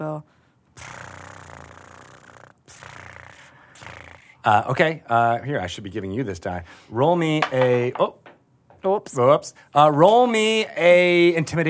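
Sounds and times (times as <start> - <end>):
person imitating a cat purring: 0.8 - 4.7
speech: 4.4 - 8.2, 8.9 - 11.6.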